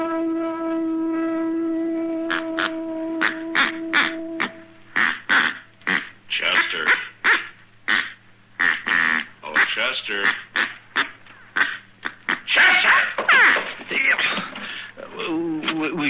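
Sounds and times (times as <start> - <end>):
faint low hum: 0.0 - 16.0
duck call blown: 2.2 - 13.7.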